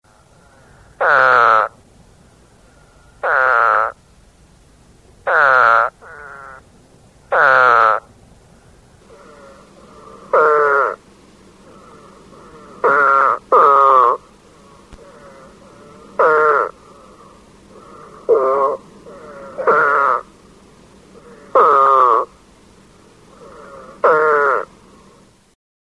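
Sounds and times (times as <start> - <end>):
spadefoot toad: 3.2 - 4.0, 5.3 - 6.6, 7.3 - 8.1, 9.0 - 11.0, 11.6 - 20.3, 21.2 - 22.3, 23.3 - 24.7.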